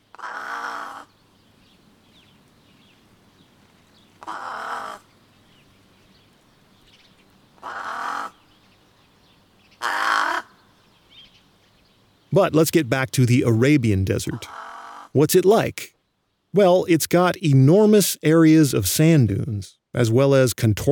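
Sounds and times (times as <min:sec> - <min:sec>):
brown-necked raven calling with harsh croaking caws: 0:00.1 - 0:01.2, 0:04.2 - 0:05.1, 0:07.6 - 0:08.4, 0:09.8 - 0:10.8, 0:12.9 - 0:15.3
speech: 0:12.3 - 0:15.9, 0:16.5 - 0:20.9.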